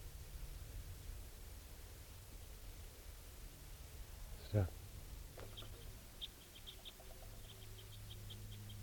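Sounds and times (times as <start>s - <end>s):
low steady hum: 0.0s - 8.8s
speech: 4.5s - 4.8s
red crossbill calls, thought to be type 4s, with juveniles: 5.4s - 8.8s.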